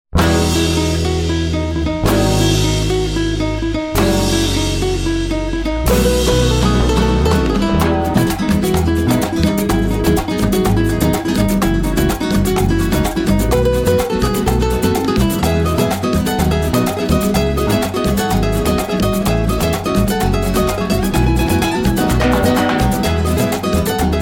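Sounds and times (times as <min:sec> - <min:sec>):
Latin band playing: 0:00.2 - 0:24.1.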